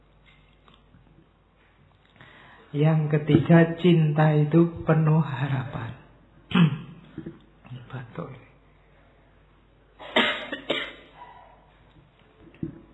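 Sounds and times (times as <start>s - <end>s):
speech: 2.7s - 6.0s, 7.9s - 8.4s
audience members clearing their throats: 6.5s - 7.4s, 10.0s - 11.6s
lecture audience members coughing on request: 10.0s - 11.2s.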